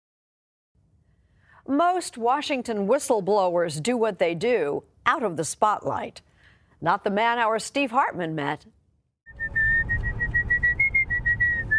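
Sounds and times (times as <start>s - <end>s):
speech: 1.6s - 8.8s
person whistling a bright tune: 9.3s - 11.7s.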